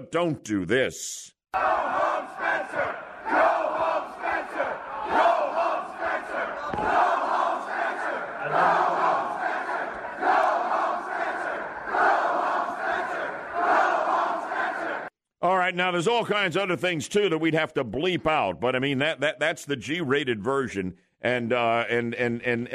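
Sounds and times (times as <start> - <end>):
speech: 0.0 - 5.3, 15.8 - 22.7
protest crowd shouting and chanting: 1.6 - 15.1.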